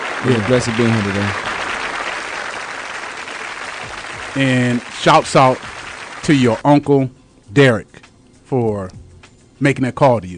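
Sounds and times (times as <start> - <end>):
crowd applause: 0.0 - 6.6
speech: 0.2 - 1.5, 4.4 - 9.0, 9.6 - 10.3.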